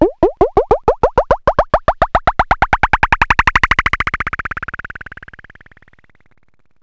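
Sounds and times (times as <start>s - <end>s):
cartoon plastic bounce: 0.0s - 4.7s.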